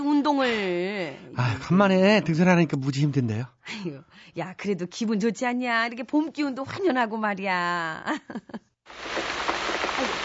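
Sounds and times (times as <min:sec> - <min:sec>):
speech: 0:00.2 - 0:10.2
sudden steady downpour of rain: 0:08.9 - 0:10.2.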